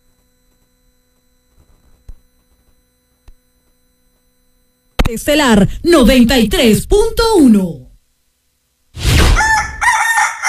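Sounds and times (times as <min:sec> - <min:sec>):
speech: 0:05.1 - 0:07.8
rooster crowing: 0:09.3 - 0:10.4.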